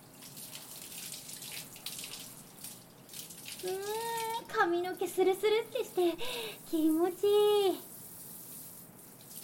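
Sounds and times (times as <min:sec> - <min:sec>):
running water rinsing hair and scalp during bathing: 0:00.0 - 0:09.4
person humming a tune: 0:03.6 - 0:04.4
speech: 0:03.6 - 0:07.9.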